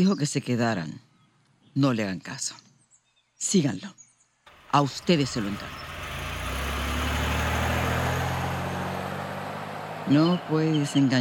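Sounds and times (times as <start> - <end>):
speech: 0.0 - 1.0, 1.8 - 2.7, 3.4 - 4.0, 4.7 - 5.9, 10.1 - 11.1
broad road-like noise: 4.4 - 11.1
car engine running with a low rumble: 4.5 - 11.1.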